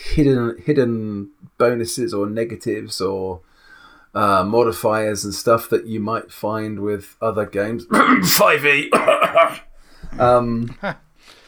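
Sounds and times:
speech: 0.2s - 3.5s, 4.1s - 11.0s
brief throaty voiced sound: 7.9s - 9.6s
harsh coughs: 7.9s - 9.7s.

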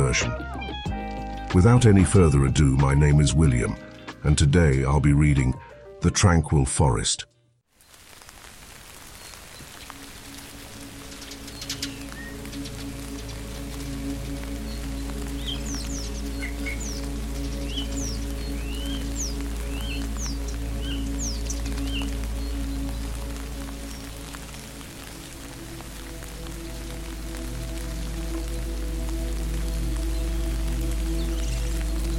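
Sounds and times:
speech: 0.1s - 0.5s, 1.5s - 7.3s
steady rain pattering across surfaces: 7.7s - 32.1s.

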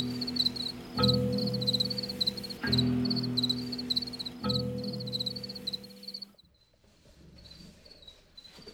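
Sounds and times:
chorus of male crickets in a colony chirping in polyrhythms: 0.0s - 6.7s.

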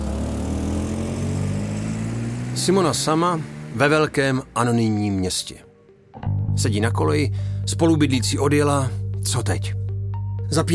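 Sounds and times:
car engine humming while driving toward Prague: 0.0s - 5.4s
speech: 2.6s - 5.7s, 6.6s - 9.8s, 10.5s - 10.7s.

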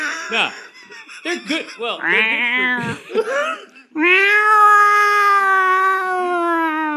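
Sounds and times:
laughter: 0.0s - 4.0s
speech: 0.3s - 4.7s
alley cat yowling: 2.0s - 2.8s, 4.0s - 6.9s.

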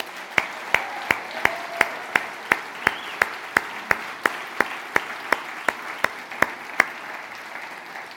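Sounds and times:
audience applauding: 0.0s - 8.1s.

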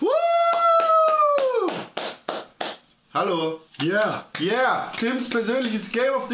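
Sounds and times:
long sustained whooping cheer: 0.0s - 1.9s
sharp hand claps: 0.3s - 2.9s, 3.8s - 4.6s, 5.2s - 6.0s
speech: 3.2s - 6.3s.

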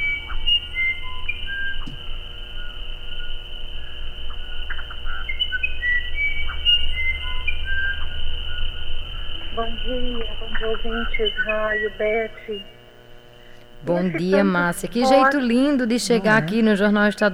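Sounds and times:
Irapuru bird singing a flute-like melody: 0.0s - 2.0s, 5.0s - 8.9s
steady low hum: 0.0s - 17.3s
speech: 9.8s - 12.8s, 13.8s - 17.3s.

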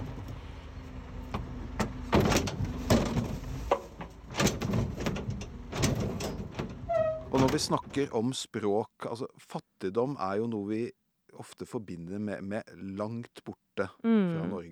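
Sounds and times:
garbage truck engine rumbling outdoors: 0.0s - 7.8s
metallic clanks and thumps of a garbage truck: 1.3s - 7.9s
speech: 7.5s - 14.7s.

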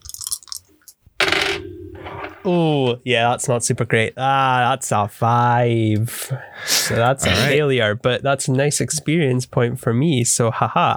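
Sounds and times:
dice tumbling and rattling across a hard table surface: 0.0s - 0.7s
speech: 2.4s - 10.9s.

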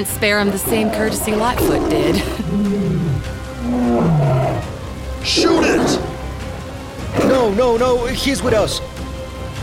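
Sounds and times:
speech: 0.0s - 6.1s, 7.3s - 9.0s
lion growling and roaring: 0.4s - 7.8s.

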